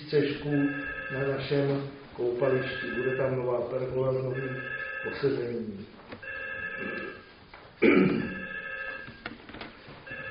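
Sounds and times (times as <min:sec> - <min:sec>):
speech: 0:00.1 - 0:06.0, 0:07.8 - 0:08.4
telephone ringing with a warbling electronic tone: 0:00.2 - 0:05.5, 0:06.2 - 0:07.4, 0:08.2 - 0:09.3, 0:10.0 - 0:10.2.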